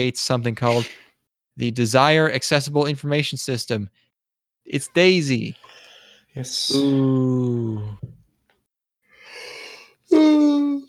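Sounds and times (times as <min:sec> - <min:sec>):
speech: 0:00.0 - 0:01.0, 0:01.6 - 0:04.0, 0:04.6 - 0:05.7, 0:06.3 - 0:08.2, 0:10.1 - 0:10.8
person yawning with a loud drawn-out vocal groan: 0:06.6 - 0:08.0, 0:10.1 - 0:10.8.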